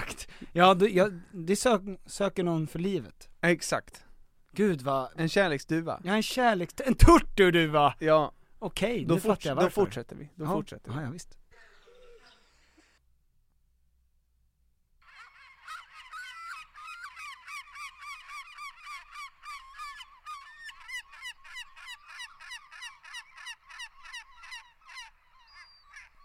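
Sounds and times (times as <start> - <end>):
speech: 0.5 - 11.4
common gull calling: 11.5 - 13.0, 15.0 - 26.2.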